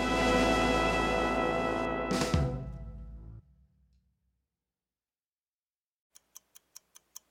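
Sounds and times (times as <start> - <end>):
musical sting: 0.0 - 3.4
crisp clock ticking: 6.2 - 7.2.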